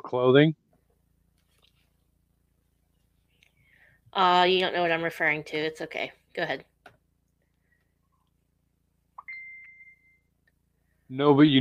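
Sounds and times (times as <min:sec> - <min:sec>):
speech: 0:00.1 - 0:00.6, 0:04.2 - 0:06.7, 0:11.1 - 0:11.5
mobile phone notification electronic chirp: 0:09.2 - 0:10.3
mobile phone notification high-pitched beep: 0:09.2 - 0:10.3.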